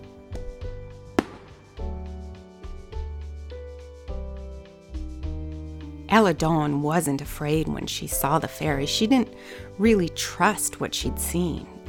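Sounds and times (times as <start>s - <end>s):
firework-like sharp bright pop sound effect: 1.2s - 1.8s
speech: 6.1s - 11.8s.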